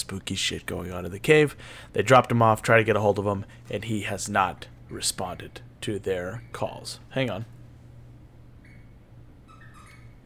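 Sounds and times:
steady low electrical hum: 0.0s - 10.2s
speech: 0.1s - 7.6s
dog squeaking in the hall: 8.6s - 10.2s.

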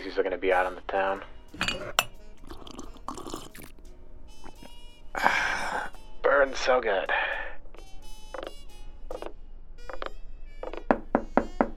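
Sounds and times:
speech: 0.0s - 2.1s, 5.2s - 5.4s, 6.4s - 7.4s
firm knocking on a door: 10.8s - 11.7s.

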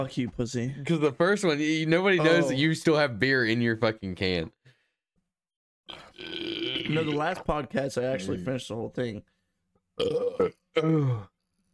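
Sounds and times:
speech: 0.0s - 4.6s, 5.9s - 9.4s, 10.0s - 11.3s
person burping: 5.9s - 7.5s, 10.0s - 11.3s.

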